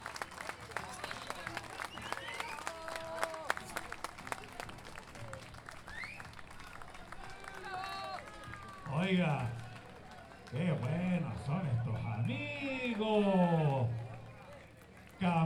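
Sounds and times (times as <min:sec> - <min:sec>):
audience applause at a gathering of folk improvising poets in San José de Maipo: 0:00.0 - 0:15.4
speech: 0:10.8 - 0:13.8.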